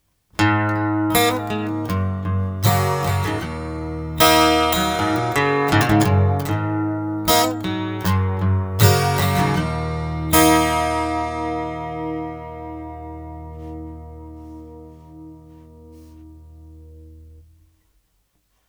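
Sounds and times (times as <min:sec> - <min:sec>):
chorus detune effect from TC Electronic G Natural: 0:00.4 - 0:17.8.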